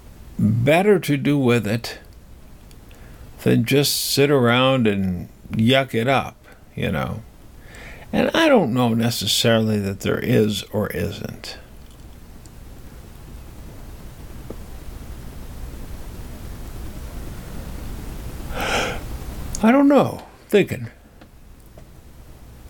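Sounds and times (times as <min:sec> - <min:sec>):
steady hiss: 0:00.0 - 0:22.6
speech: 0:00.4 - 0:02.0, 0:03.4 - 0:07.3, 0:08.1 - 0:11.6, 0:19.6 - 0:21.0
person yawning loudly with a groan and sigh: 0:18.5 - 0:19.1.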